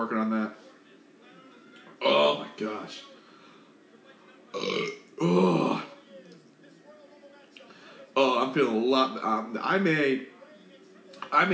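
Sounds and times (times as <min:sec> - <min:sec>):
speech: 0:00.0 - 0:00.7, 0:02.0 - 0:03.1, 0:04.6 - 0:05.8, 0:08.4 - 0:10.3, 0:11.3 - 0:11.5
loud burp in two drawn-out pulses: 0:04.6 - 0:05.9.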